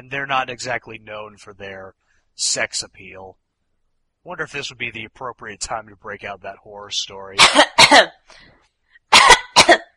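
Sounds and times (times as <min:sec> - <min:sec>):
speech: 0:00.1 - 0:03.4, 0:04.2 - 0:08.6
person coughing harshly: 0:07.4 - 0:08.1, 0:09.1 - 0:09.9.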